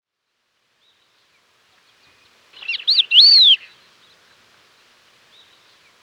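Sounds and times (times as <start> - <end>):
crested lark sweet whistled call: 2.6 - 3.7.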